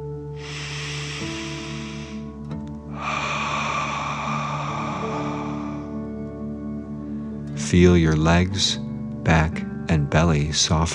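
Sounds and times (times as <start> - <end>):
soft steady musical drone: 0.0 - 10.9
slow deep breath drawn in through the nose: 0.3 - 7.4
long loud forceful rushing hissing exhale: 0.4 - 6.2
speech: 7.7 - 10.9.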